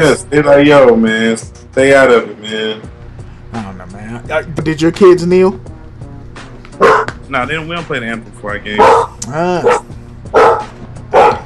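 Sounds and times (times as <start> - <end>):
speech: 0.0 - 3.0, 3.8 - 5.7, 6.8 - 9.9
dog barking: 6.8 - 7.1, 8.8 - 11.4.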